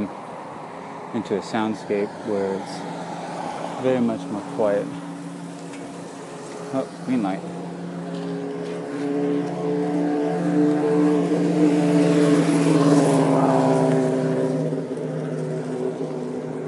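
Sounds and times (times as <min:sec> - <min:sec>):
motorcycles passing on a road: 0:00.0 - 0:16.6
speech: 0:01.1 - 0:03.0, 0:03.8 - 0:05.0, 0:06.7 - 0:07.6.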